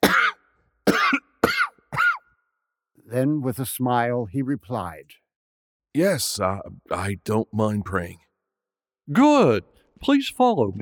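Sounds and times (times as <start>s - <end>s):
man coughing: 0.0s - 2.2s
speech: 3.1s - 5.2s, 6.0s - 8.3s, 9.1s - 10.8s.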